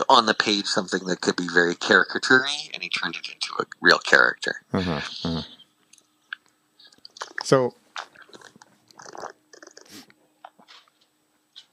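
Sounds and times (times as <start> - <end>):
speech: 0.0 - 5.6, 7.4 - 7.8
small mouth clicks: 6.3 - 9.9
person drinking: 6.8 - 10.1.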